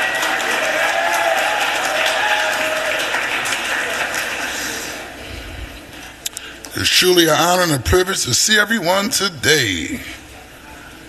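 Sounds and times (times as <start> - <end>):
audience applause: 0.0 - 5.2
speech: 6.8 - 10.2.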